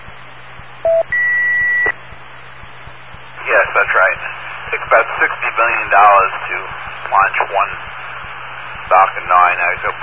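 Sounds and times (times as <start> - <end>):
faint hum: 0.0 - 10.0
electronic beeps over a radio link: 0.2 - 3.4.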